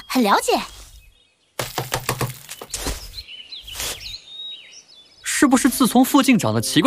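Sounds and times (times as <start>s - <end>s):
small birds chirping and twittering: 0.0s - 6.8s
speech: 0.2s - 0.8s, 5.4s - 6.8s
woodpecker pecking at wood: 1.6s - 3.2s.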